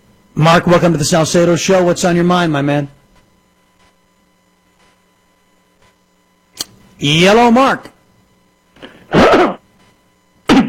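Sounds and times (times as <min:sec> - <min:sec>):
speech: 0:00.4 - 0:03.0, 0:07.0 - 0:08.0
caller clearing throat on a phone line: 0:09.0 - 0:09.7, 0:10.4 - 0:10.6.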